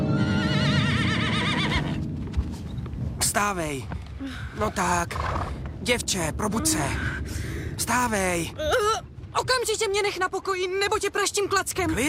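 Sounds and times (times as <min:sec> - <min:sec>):
horse neighing: 0:00.1 - 0:02.0
speech: 0:03.4 - 0:12.0.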